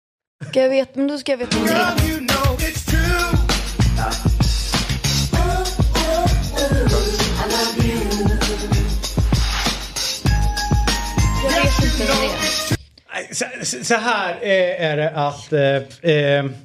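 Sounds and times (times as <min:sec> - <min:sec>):
speech: 0:00.5 - 0:02.2, 0:13.2 - 0:16.6
song with pounding beat, bass and layered instruments: 0:01.5 - 0:12.8.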